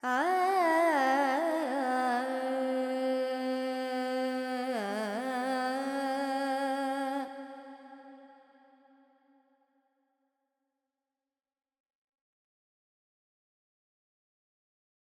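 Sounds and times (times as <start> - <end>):
female Carnatic alap singing in raga Panthuvarali: 0.0 - 8.0.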